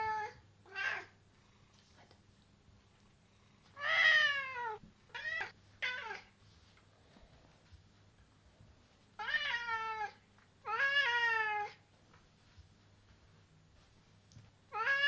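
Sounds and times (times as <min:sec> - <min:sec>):
male domestic cat meowing: 0:03.8 - 0:06.3, 0:09.2 - 0:11.8, 0:14.7 - 0:15.0.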